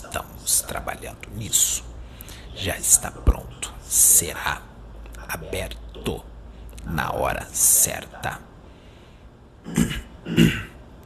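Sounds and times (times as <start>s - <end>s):
speech: 0.1s - 1.9s, 2.6s - 4.7s, 5.3s - 8.5s, 10.4s - 10.6s
man clearing his throat: 9.6s - 10.8s.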